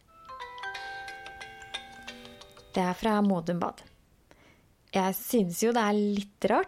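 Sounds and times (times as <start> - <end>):
phone ringtone for an incoming call: 0.0 - 3.0
speech: 2.8 - 3.9, 4.9 - 6.6.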